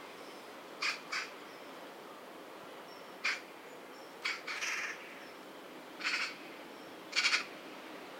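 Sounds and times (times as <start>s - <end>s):
quiet background hiss: 0.0s - 8.1s
Eurasian magpie Pica pica harsh chak calls: 0.8s - 1.3s, 4.2s - 5.0s, 6.0s - 6.4s, 7.1s - 7.5s.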